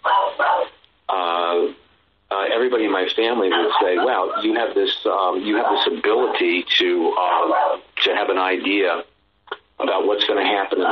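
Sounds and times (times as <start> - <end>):
dog barking: 0.0 - 0.8, 3.4 - 4.7, 5.4 - 6.6, 7.2 - 7.9, 10.7 - 10.9
speech: 2.6 - 9.1, 9.8 - 10.9.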